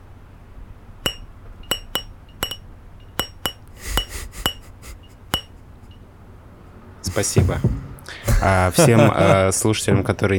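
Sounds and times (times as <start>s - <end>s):
drinking glass tapped to play a tune: 1.0s - 4.6s
laughter: 3.8s - 5.1s, 7.1s - 9.7s
speech: 7.2s - 7.8s, 8.4s - 10.3s.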